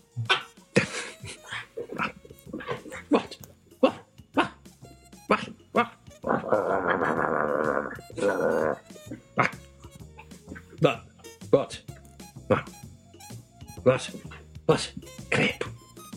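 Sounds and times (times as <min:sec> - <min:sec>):
person imitating a barking dog: 0:00.1 - 0:00.6, 0:01.3 - 0:04.7, 0:05.3 - 0:11.0, 0:12.5 - 0:12.8
person imitating a dog with a whining howl: 0:05.8 - 0:09.6
speech: 0:13.9 - 0:15.0.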